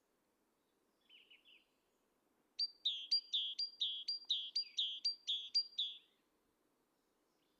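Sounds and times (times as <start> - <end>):
great tit Parus major singing: 2.6 - 6.1.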